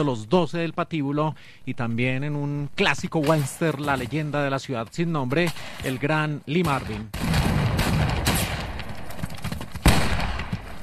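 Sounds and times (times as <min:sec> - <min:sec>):
speech: 0:00.0 - 0:07.3
dense battle-scene gunfire from a war film: 0:06.6 - 0:10.8.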